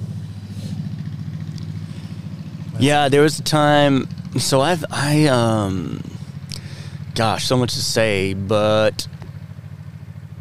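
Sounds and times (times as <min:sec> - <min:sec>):
Harley-Davidson motorcycle engine passing by: 0:00.0 - 0:10.4
speech: 0:02.8 - 0:06.1, 0:07.2 - 0:09.1.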